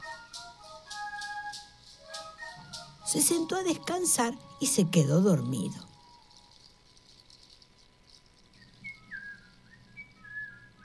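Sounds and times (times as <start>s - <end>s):
person whistling a short wavering tune on a hillside: 0.0s - 4.0s, 8.5s - 10.8s
soft low hum: 0.0s - 10.8s
speech: 3.1s - 5.9s.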